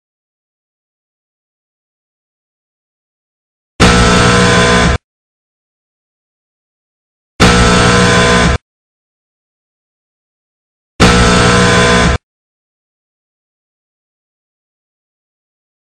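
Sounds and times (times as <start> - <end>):
buzzer heard from audience point of view: 3.8 - 5.0, 7.4 - 8.6, 11.0 - 12.3.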